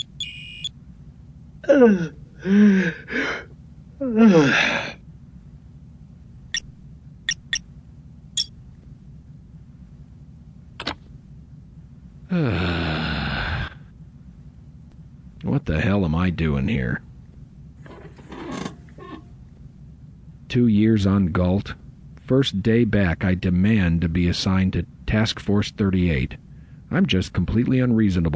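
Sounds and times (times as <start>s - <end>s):
short high electronic beeps: 0.0s - 0.7s, 7.3s - 7.6s
man yawning: 1.6s - 5.0s, 12.3s - 13.9s
speech: 1.6s - 5.0s, 12.3s - 12.8s, 15.5s - 17.1s, 20.5s - 28.3s
breathy exhale: 2.4s - 3.6s, 12.3s - 14.0s.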